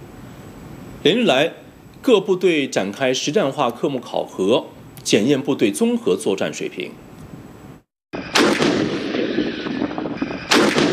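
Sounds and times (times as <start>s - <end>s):
speech: 1.0s - 7.0s
tank gun blasts during live-fire gunnery drills in a desert in Xinjiang: 8.2s - 10.9s.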